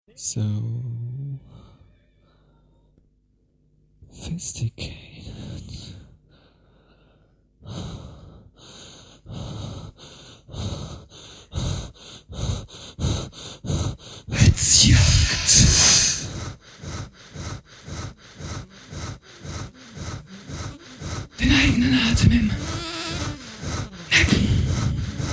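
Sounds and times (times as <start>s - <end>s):
speech: 0.2s - 1.0s, 4.2s - 5.1s
rapid rhythmic panting breaths and harsh rasping gasps: 6.3s - 25.3s.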